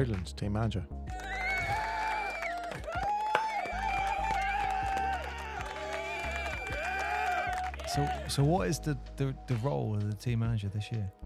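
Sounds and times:
speech: 0.0s - 1.2s, 7.9s - 11.2s
crowd applauding: 1.1s - 8.5s.

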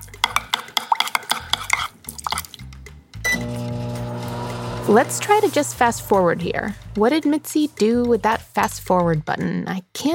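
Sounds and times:
spoon stirring oats and water in a bowl: 0.0s - 2.5s
steady electric hum: 3.3s - 7.7s
speech: 4.9s - 10.1s.

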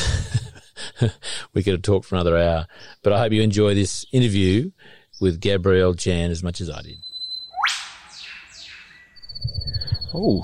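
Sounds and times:
speech: 1.0s - 7.1s, 10.1s - 10.4s
bird calling with sweeping and swooping whistles: 6.8s - 10.4s.

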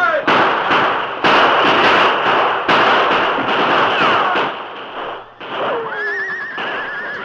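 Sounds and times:
gunshots as two sides exchange fire: 0.0s - 7.2s
noisy clamor: 2.8s - 7.2s
horse whinnying: 5.5s - 7.2s.

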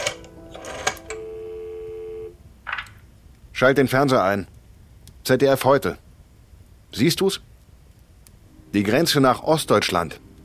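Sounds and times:
telephone handling or dialing noise: 0.0s - 1.3s
telephone dial tone: 0.5s - 2.4s
speech: 3.6s - 4.5s, 5.3s - 6.0s, 6.9s - 7.5s, 8.7s - 10.2s.

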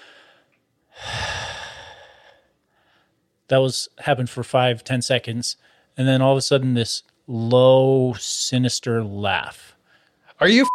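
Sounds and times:
quiet breathing: 0.0s - 3.3s, 5.6s - 6.0s, 9.7s - 10.4s
voice imitating heavy breathing: 1.0s - 2.4s
speech: 3.5s - 9.7s, 10.4s - 10.7s.

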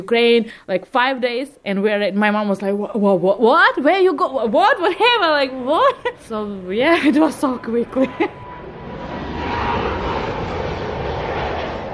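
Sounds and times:
speech: 0.0s - 8.4s
airplane engines roaring during landing: 4.2s - 11.9s.

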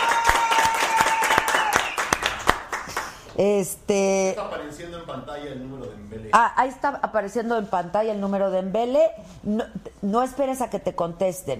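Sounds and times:
small group of audience clapping: 0.0s - 3.2s
speech: 3.4s - 11.5s.

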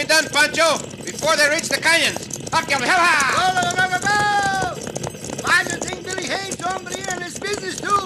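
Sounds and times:
galloping hoofbeats of a cattle stampede: 0.0s - 8.0s
speech: 0.2s - 4.4s
people shouting: 3.9s - 4.8s.

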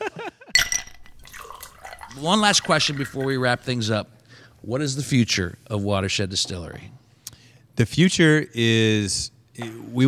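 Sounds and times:
bright glassy clink: 0.6s - 3.7s
spirit poured into a glass: 0.6s - 3.9s
speech: 2.2s - 7.0s, 7.8s - 10.0s.

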